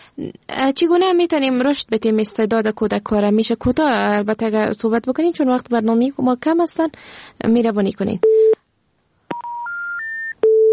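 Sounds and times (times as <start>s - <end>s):
speech: 0.2s - 8.5s
rising electronic telephone tones after a phone call is cut off: 9.3s - 10.7s.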